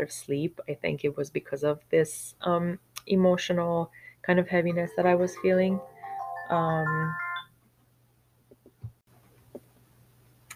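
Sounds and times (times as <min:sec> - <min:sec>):
speech: 0:00.0 - 0:05.9, 0:06.5 - 0:07.2
mobile phone ringtone: 0:04.7 - 0:07.5.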